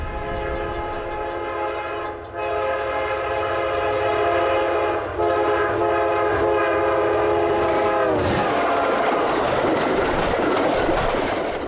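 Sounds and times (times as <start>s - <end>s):
train horn blaring: 0.0s - 8.4s
freight tanker train speeding past in agricultural land: 0.0s - 11.6s.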